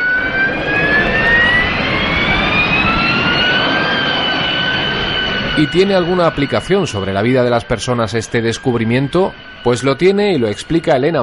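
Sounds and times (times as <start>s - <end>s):
Harrier jump jet turbine engine roar: 0.0s - 11.2s
speech: 5.6s - 11.2s.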